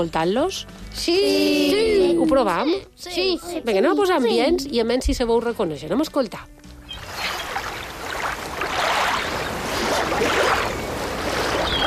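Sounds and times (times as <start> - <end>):
speech: 0.0 - 6.6
waves washing onto a beach: 7.2 - 11.8.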